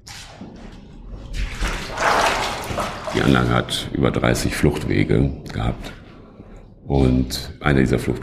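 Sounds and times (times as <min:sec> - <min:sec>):
heavy footsteps wading through ankle-deep water in a flooded tunnel: 0:01.4 - 0:03.6
speech: 0:03.2 - 0:06.0, 0:06.9 - 0:08.2.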